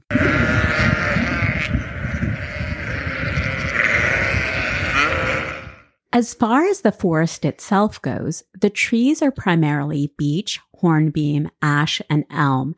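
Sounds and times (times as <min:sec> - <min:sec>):
flock of sheep bleating together: 0:00.0 - 0:05.9
speech: 0:06.2 - 0:12.7.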